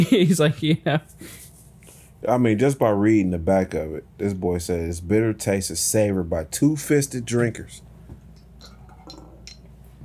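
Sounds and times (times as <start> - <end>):
speech: 0.0 - 1.4, 2.2 - 7.9
low steady hum: 0.0 - 10.0
shot glasses clinking: 8.4 - 9.7.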